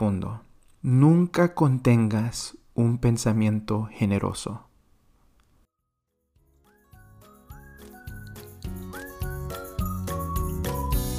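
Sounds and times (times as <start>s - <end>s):
speech: 0.0s - 4.7s
bright upbeat whistled jingle with sliding notes: 5.7s - 11.1s.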